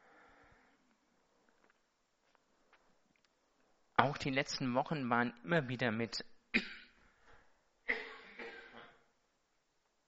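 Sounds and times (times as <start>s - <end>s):
speech: 4.0s - 6.8s
person coughing: 6.5s - 7.0s, 7.9s - 9.1s.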